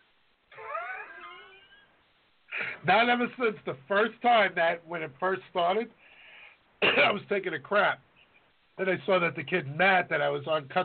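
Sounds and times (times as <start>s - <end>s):
cat meowing: 0.5s - 1.9s
speech: 2.8s - 6.1s, 6.8s - 8.1s, 8.8s - 10.8s.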